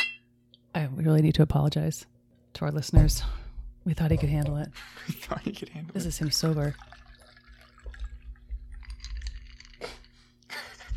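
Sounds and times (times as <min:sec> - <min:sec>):
speech: 0:00.8 - 0:07.0
laughter: 0:04.8 - 0:05.9, 0:10.5 - 0:10.9
cocktail dripping from a shaker into a glass: 0:06.1 - 0:10.1.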